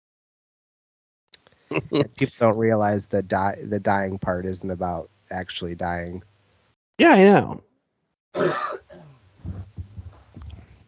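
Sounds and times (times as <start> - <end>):
throat clearing: 1.7 - 2.5, 8.4 - 9.7
rumbling: 1.7 - 6.2, 9.4 - 10.8
speech: 1.7 - 6.3, 7.0 - 7.7, 8.3 - 8.8
person coughing: 8.4 - 9.1.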